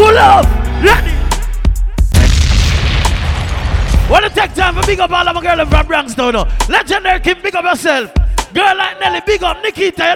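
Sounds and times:
speech: 0:00.2 - 0:01.1, 0:04.1 - 0:10.1
DJ bomb drop sound effect: 0:02.1 - 0:06.2.

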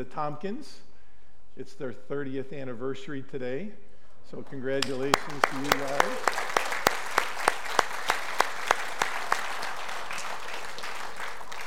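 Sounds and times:
speech: 0:00.0 - 0:00.9, 0:01.6 - 0:06.4
sharp evenly spaced claps: 0:04.4 - 0:11.6
audience applauding: 0:04.8 - 0:11.6.

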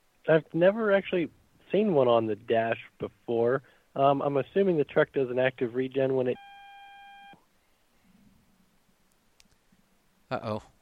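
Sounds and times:
faint phone line hiss: 0:00.0 - 0:10.7
speech: 0:00.3 - 0:06.5, 0:10.3 - 0:10.7
electronic beep on a phone line during a call: 0:06.4 - 0:07.4.

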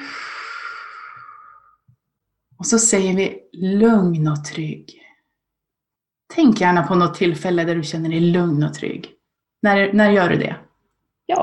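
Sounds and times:
slow exhale through the mouth: 0:00.0 - 0:01.8
speech: 0:02.6 - 0:05.0, 0:06.4 - 0:10.6, 0:11.3 - 0:11.4.

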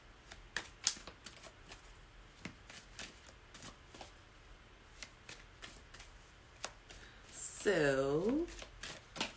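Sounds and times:
low steady hiss: 0:00.0 - 0:09.3
playing cards dropped and handled: 0:00.2 - 0:04.1, 0:04.9 - 0:07.1, 0:08.5 - 0:09.3
speech: 0:07.7 - 0:08.6.

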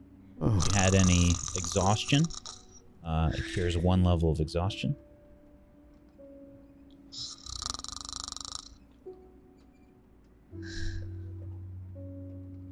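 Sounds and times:
person snoring with rattling and breathy snores: 0:00.4 - 0:03.7, 0:07.2 - 0:08.8
speech: 0:00.6 - 0:02.4, 0:03.0 - 0:05.0.

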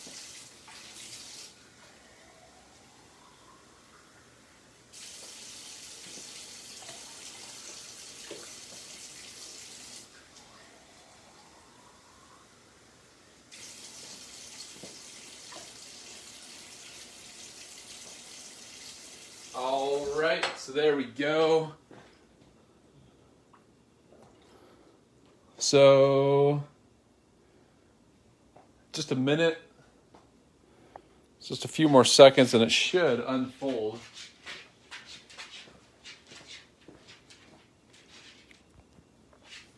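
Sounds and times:
water running from a tap: 0:00.0 - 0:01.6, 0:04.9 - 0:10.5, 0:13.5 - 0:20.2
speech: 0:19.6 - 0:21.8, 0:25.7 - 0:26.7, 0:29.0 - 0:29.6, 0:31.5 - 0:34.3.

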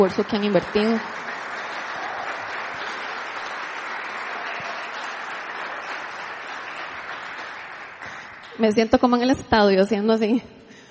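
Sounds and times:
speech: 0:00.0 - 0:01.3, 0:08.6 - 0:10.6
church audience applauding: 0:00.0 - 0:09.1.

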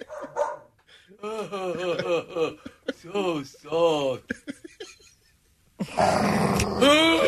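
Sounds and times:
laughter: 0:00.0 - 0:00.5, 0:01.2 - 0:06.0, 0:06.8 - 0:07.2
dog barking: 0:00.0 - 0:00.7
speech: 0:01.2 - 0:03.8
person imitating a dog's growl: 0:05.8 - 0:07.2.

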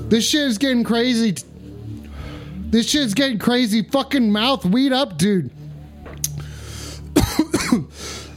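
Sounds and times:
speech: 0:00.1 - 0:01.5, 0:02.7 - 0:05.6
person coughing hard and rasping: 0:07.1 - 0:08.3.

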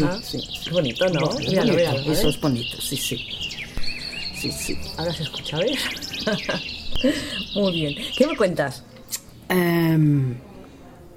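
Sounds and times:
speech: 0:00.0 - 0:03.6, 0:04.4 - 0:08.9, 0:09.5 - 0:10.5
small bird chirping and trilling outside: 0:00.0 - 0:09.6
brief laughter: 0:05.7 - 0:07.6.

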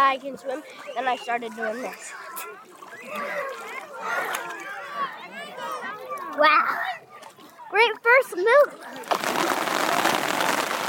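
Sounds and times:
speech: 0:00.0 - 0:04.7, 0:06.4 - 0:07.0, 0:07.7 - 0:09.6
steady rain on a hard surface: 0:09.0 - 0:10.8.

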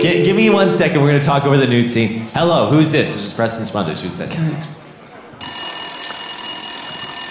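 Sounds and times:
speech: 0:00.0 - 0:04.8
landline telephone ringing: 0:05.4 - 0:07.3.

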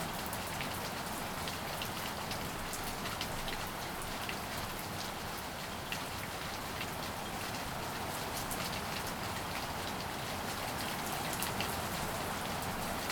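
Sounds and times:
light rain pattering on a surface: 0:00.0 - 0:13.1.

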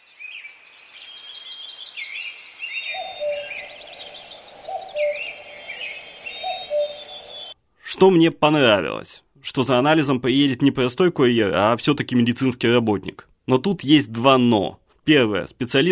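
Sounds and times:
songbirds trilling and warbling in a forest: 0:00.0 - 0:07.6
speech: 0:08.0 - 0:15.9.

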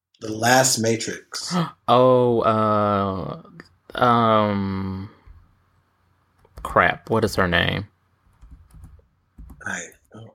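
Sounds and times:
speech: 0:00.2 - 0:05.2, 0:06.6 - 0:07.9, 0:09.6 - 0:10.3
computer keyboard typing: 0:08.3 - 0:10.1.

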